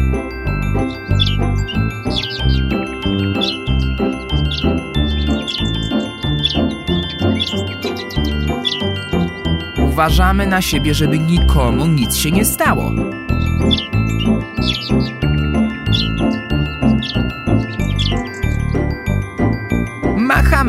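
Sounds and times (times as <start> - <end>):
bright tinkling bell-like notes: 0.0 - 20.6
lively instrumental music: 0.0 - 20.6
speech: 10.0 - 13.1.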